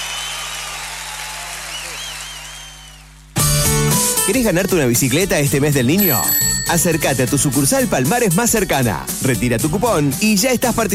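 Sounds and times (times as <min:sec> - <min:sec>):
applause: 0:00.0 - 0:03.4
speech: 0:04.3 - 0:10.9.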